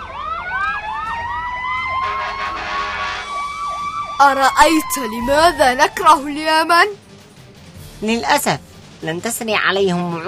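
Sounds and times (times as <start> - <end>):
air raid warning sirens wailing: 0.0 - 6.9
speech: 4.2 - 7.0, 8.0 - 10.2.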